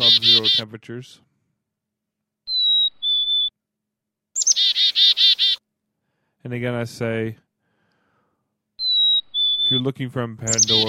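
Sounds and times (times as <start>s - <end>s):
chickadee calling: 0.0s - 0.7s, 2.5s - 3.5s, 4.4s - 5.6s, 8.8s - 10.8s
speech: 0.6s - 1.3s, 6.4s - 7.4s, 9.7s - 10.8s.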